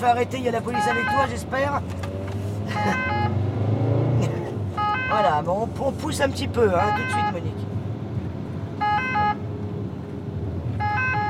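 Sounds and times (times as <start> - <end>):
speech: 0.0 - 2.1, 5.2 - 7.7
moving ambulance engine and road rumble: 0.0 - 11.2
two-tone ambulance siren: 0.7 - 1.3, 2.8 - 3.4, 4.8 - 5.3, 6.8 - 7.4, 8.8 - 9.4, 10.8 - 11.2.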